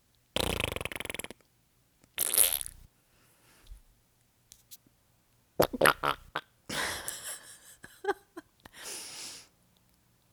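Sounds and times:
mouth-made fart noises: 0.4s - 1.4s, 2.2s - 2.8s, 5.6s - 6.5s.

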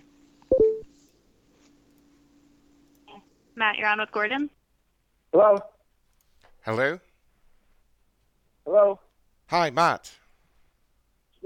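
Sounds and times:
telephone touch-tone dialing beeps: 0.5s - 0.9s
speech: 3.6s - 4.6s, 5.3s - 5.7s, 6.6s - 7.1s, 8.7s - 10.2s.

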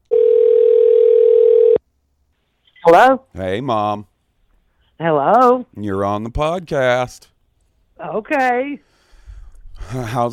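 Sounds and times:
telephone dial tone while placing a call: 0.1s - 1.8s
speech: 2.8s - 4.1s, 5.0s - 7.3s, 8.0s - 8.9s, 9.8s - 10.3s.

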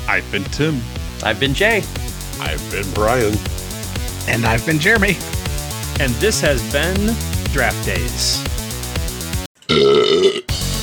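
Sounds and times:
speech: 0.1s - 3.5s, 4.2s - 5.4s, 6.0s - 8.5s, 9.7s - 10.5s
loud burp: 9.6s - 10.6s.

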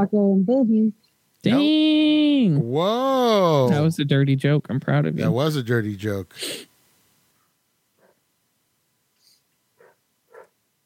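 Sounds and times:
speech: 0.0s - 6.7s
faint background hiss: 0.0s - 10.8s
dog barking: 7.4s - 8.3s, 9.8s - 10.6s.

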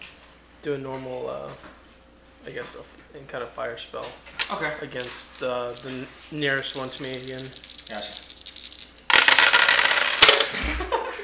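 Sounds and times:
speech: 0.6s - 1.8s, 2.4s - 8.3s
dice rolling across a hard surface during a tabletop role-playing game: 4.4s - 10.6s.

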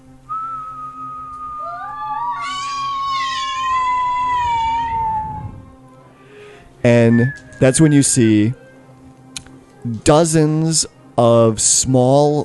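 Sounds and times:
warbling higher whistles: 0.3s - 2.8s, 6.9s - 8.5s
long steady whistling tone gliding downward: 0.3s - 5.6s, 6.9s - 8.6s
speech: 6.8s - 8.6s, 9.8s - 12.4s.

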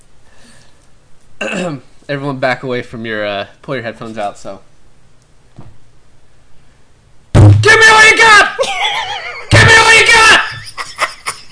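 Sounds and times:
speech: 1.4s - 4.7s
heavy thud on a tabletop: 5.6s - 5.8s, 7.4s - 7.7s
loud sustained vocal shout: 7.6s - 8.6s, 9.5s - 10.6s.

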